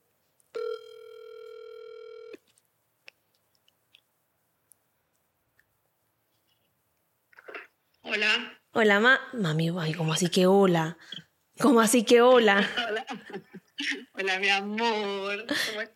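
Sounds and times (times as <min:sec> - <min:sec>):
telephone ringback tone while someone is being called: 0:00.6 - 0:02.4
speech: 0:08.2 - 0:15.9
laughter: 0:12.6 - 0:14.3.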